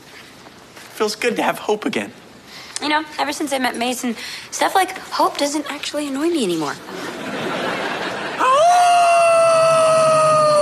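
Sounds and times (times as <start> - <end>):
speech: 1.0 - 2.2, 2.8 - 7.3
laughter: 6.9 - 10.2
dog howling on the scent: 8.5 - 10.6.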